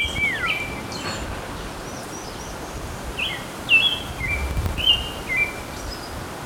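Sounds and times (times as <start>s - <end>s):
songbird singing in a city: 0.0s - 1.0s, 3.2s - 6.1s
steady low rumble: 3.9s - 6.3s.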